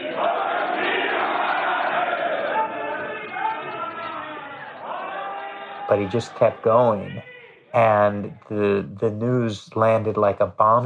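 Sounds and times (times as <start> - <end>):
parliament members shouting, heckling and booing in a large hall: 0.0 - 7.7
speech: 5.9 - 10.8.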